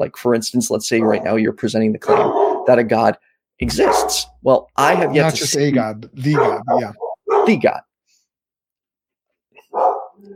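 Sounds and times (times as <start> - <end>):
speech: 0.0 - 7.9
dog barking: 1.0 - 1.4, 2.0 - 2.8, 3.7 - 4.3, 6.3 - 7.6, 9.6 - 10.2
dog yipping: 2.1 - 2.7, 6.4 - 7.6, 9.6 - 10.2.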